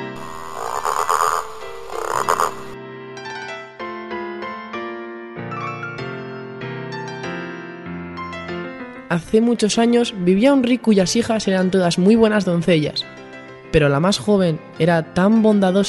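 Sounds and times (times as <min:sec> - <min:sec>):
frog croaking: 0:00.0 - 0:02.8
speech: 0:09.1 - 0:15.8.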